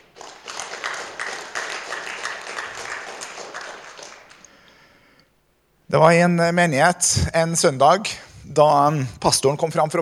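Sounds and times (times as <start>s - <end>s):
crowd applauding a team: 0.0s - 4.7s
speech: 5.9s - 9.9s.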